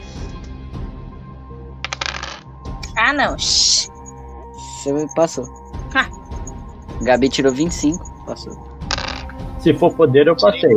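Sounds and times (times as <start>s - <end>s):
dice clattering across a hard table: 1.9s - 2.4s, 8.9s - 9.3s
speech: 3.1s - 3.9s, 4.8s - 6.2s, 7.0s - 8.7s, 9.6s - 10.7s.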